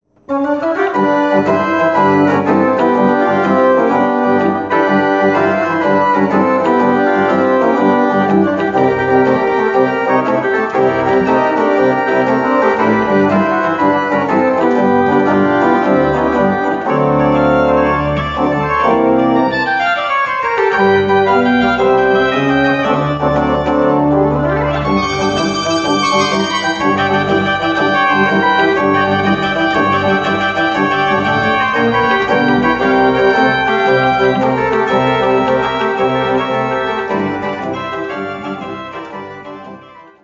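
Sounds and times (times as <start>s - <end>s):
jazz pop blues music: 0.5s - 39.5s.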